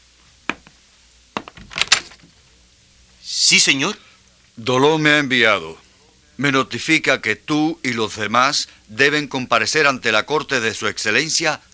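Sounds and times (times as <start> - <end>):
door latch rattling: 1.5 - 2.2
speech: 3.5 - 5.8, 6.4 - 11.7.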